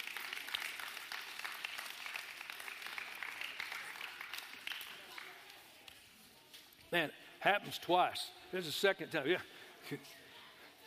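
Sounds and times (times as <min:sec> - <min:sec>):
audience applauding as kids and youth are dismissed: 0:00.0 - 0:05.4
speech: 0:06.9 - 0:10.2.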